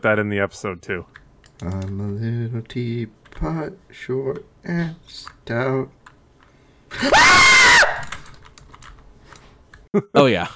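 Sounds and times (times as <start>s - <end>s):
speech: 0.0s - 6.0s, 6.9s - 7.7s, 10.0s - 10.5s
shrill video game scream: 7.0s - 8.2s.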